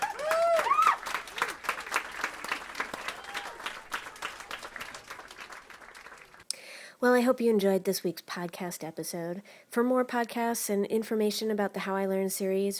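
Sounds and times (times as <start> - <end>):
audience whoops and cheers: 0.0 - 1.2, 2.9 - 4.7
live audience applauding: 0.0 - 6.4
speech: 7.0 - 12.7.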